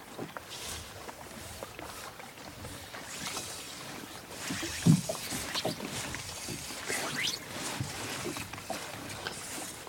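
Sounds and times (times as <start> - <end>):
water splashing and lapping against a small boat on a sheltered loch: 0.0 - 9.8.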